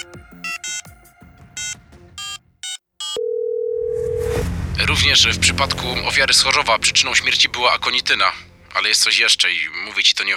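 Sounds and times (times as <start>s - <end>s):
phone keypad beeps: 1.6s - 4.2s
steady electronic telephone tone: 3.8s - 9.5s
speech: 4.8s - 10.3s.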